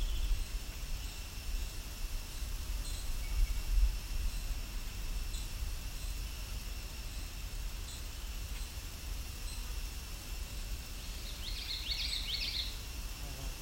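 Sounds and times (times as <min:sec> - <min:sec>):
steady background hiss of outdoor noise: 0:00.0 - 0:13.5
blue jay calling: 0:11.1 - 0:12.8.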